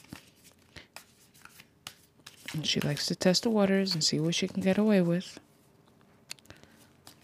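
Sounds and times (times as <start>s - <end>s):
deck of cards being shuffled: 0.0s - 5.3s
speech: 2.6s - 5.4s.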